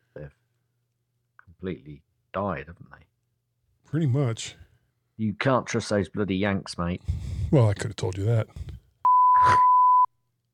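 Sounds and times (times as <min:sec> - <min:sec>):
speech: 0:00.2 - 0:00.4, 0:01.6 - 0:03.1, 0:03.9 - 0:04.6, 0:05.2 - 0:08.7, 0:09.4 - 0:09.7
censor bleep: 0:09.1 - 0:10.1.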